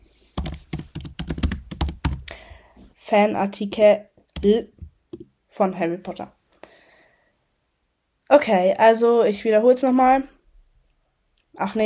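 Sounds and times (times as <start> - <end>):
typing a note on a computer keyboard: 0.4 - 2.3
speech: 3.1 - 4.8, 5.6 - 6.4, 8.4 - 10.4, 11.6 - 11.8.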